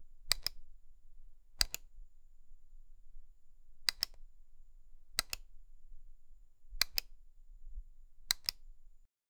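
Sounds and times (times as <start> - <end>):
button switching: 0.3 - 0.6, 1.6 - 1.8, 3.9 - 4.2, 5.2 - 5.4, 6.8 - 7.1, 8.3 - 8.6.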